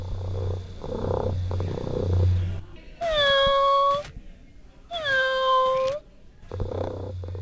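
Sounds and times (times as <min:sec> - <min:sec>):
robotic pet cat low purring hum: 0:00.0 - 0:04.0, 0:05.8 - 0:07.4
robotic pet cat meowing: 0:03.0 - 0:04.1, 0:05.0 - 0:06.0.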